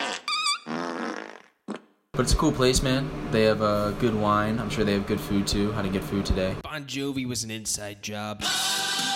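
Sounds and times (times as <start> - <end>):
fart noises: 0.0 - 2.0
speech: 2.2 - 9.0.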